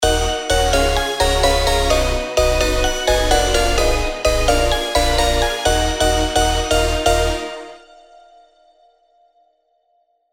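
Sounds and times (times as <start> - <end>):
chords in D: 0.0 - 8.1.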